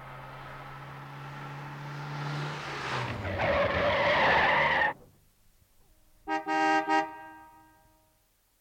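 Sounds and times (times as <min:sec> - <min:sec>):
tires screeching as the car brakes hard: 0:00.0 - 0:05.1
car engine rumbling: 0:00.0 - 0:06.3
car horn honks: 0:06.2 - 0:08.2.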